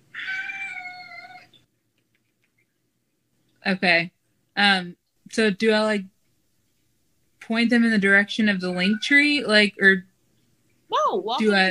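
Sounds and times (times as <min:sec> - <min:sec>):
long drawn-out cat meow: 0:00.1 - 0:01.6
speech: 0:03.6 - 0:06.1, 0:07.5 - 0:10.1, 0:11.1 - 0:11.6.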